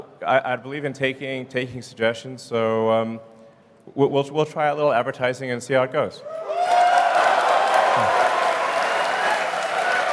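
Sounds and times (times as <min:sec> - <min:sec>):
speech: 0:00.2 - 0:03.3, 0:03.9 - 0:06.6, 0:08.0 - 0:08.2
large audience applause: 0:06.6 - 0:10.1.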